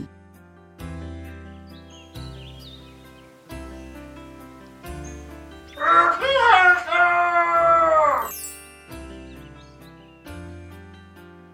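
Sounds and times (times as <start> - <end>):
red rooster crowing before sunrise: 5.8 - 8.5.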